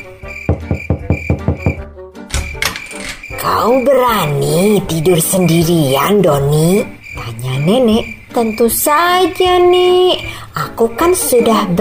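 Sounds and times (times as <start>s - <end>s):
knocking on a wooden bedroom door: 0.4s - 2.8s
speech: 3.5s - 7.0s, 7.6s - 11.7s.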